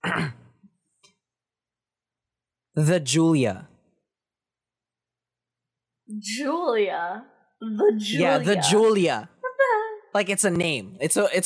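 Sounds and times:
forceful throat clearing: 0:00.0 - 0:00.7
speech: 0:02.8 - 0:03.7, 0:06.2 - 0:09.3, 0:10.1 - 0:11.4.

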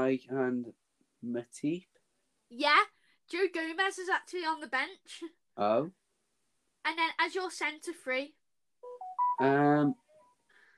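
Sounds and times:
speech: 0:00.0 - 0:01.9, 0:02.5 - 0:06.0, 0:06.8 - 0:08.4, 0:09.4 - 0:10.0
mobile phone going off with electronic beeps: 0:08.8 - 0:09.9.

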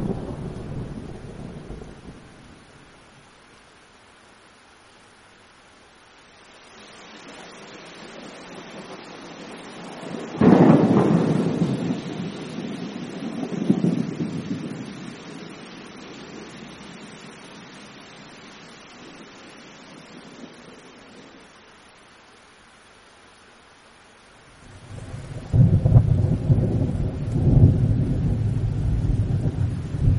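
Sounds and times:
deep rolling thunder in a heavy thunderstorm: 0:00.0 - 0:02.6, 0:08.8 - 0:15.4, 0:24.6 - 0:30.1
soft hiss of rain: 0:00.0 - 0:30.1.

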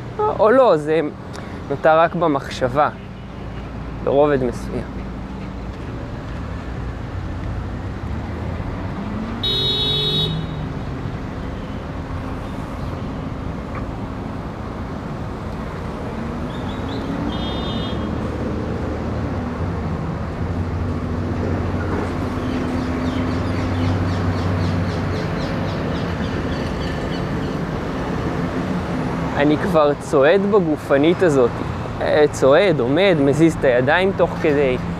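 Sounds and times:
cars passing: 0:00.0 - 0:34.9
dense street traffic rumbling: 0:00.0 - 0:34.9
speech: 0:00.2 - 0:03.0, 0:04.0 - 0:05.1, 0:29.5 - 0:34.9.

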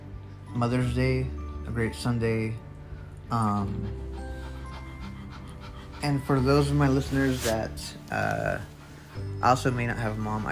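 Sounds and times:
speech: 0:00.6 - 0:02.7, 0:03.3 - 0:04.0, 0:06.0 - 0:10.4
Rhodesian Ridgeback panting: 0:02.7 - 0:10.4.

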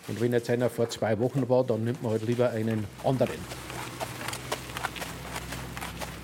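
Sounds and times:
speech: 0:00.0 - 0:03.6
racehorse hooves clip-clopping at a walking pace: 0:00.0 - 0:06.2
low hum: 0:00.4 - 0:06.2.

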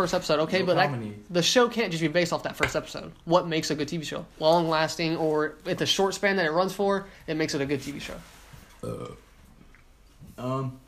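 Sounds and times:
speech: 0:00.0 - 0:09.2, 0:10.4 - 0:10.8
voiced rumbling burps: 0:08.8 - 0:09.3.

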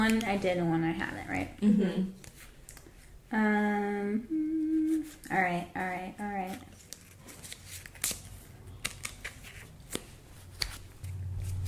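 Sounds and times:
speech: 0:00.0 - 0:02.3, 0:03.3 - 0:06.7
deck of cards being shuffled: 0:02.2 - 0:03.1, 0:04.8 - 0:05.4, 0:06.4 - 0:11.6.

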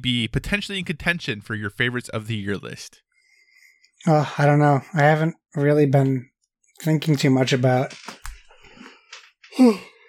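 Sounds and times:
speech: 0:00.0 - 0:03.0, 0:04.0 - 0:08.2, 0:09.6 - 0:09.9
big drawn-out yawn with voiced groan: 0:09.5 - 0:10.0.

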